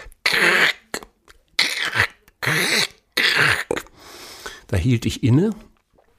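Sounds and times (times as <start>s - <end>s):
voice imitating a man biting into potato chips: 0.0s - 3.9s
speech: 4.7s - 5.7s.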